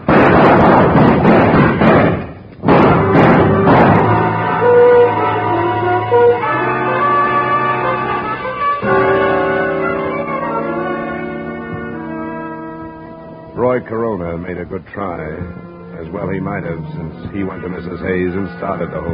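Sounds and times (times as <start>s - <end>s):
gunshots in a tense confrontation: 0.0s - 5.4s
sustained musical tones: 2.7s - 19.1s
speech: 14.5s - 19.1s.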